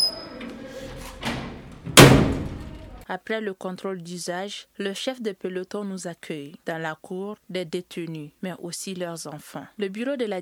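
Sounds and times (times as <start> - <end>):
heavy metal prison doors clanking open at Bolé prison in Mali: 0.0 - 3.0
loud resonant bang: 1.9 - 3.0
speech: 3.1 - 10.4.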